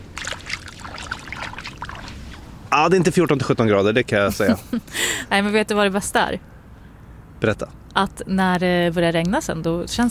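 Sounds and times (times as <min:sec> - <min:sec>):
hand splashing in cold lake water: 0:00.0 - 0:02.4
speech: 0:02.7 - 0:06.5, 0:07.4 - 0:10.0.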